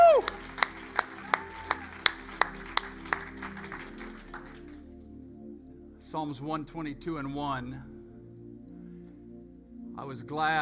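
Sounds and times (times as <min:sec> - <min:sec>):
group of people clapping in a steady beat: 0:00.0 - 0:04.8
low sustained musical drone: 0:00.0 - 0:10.6
speech: 0:06.1 - 0:08.0, 0:10.1 - 0:10.6.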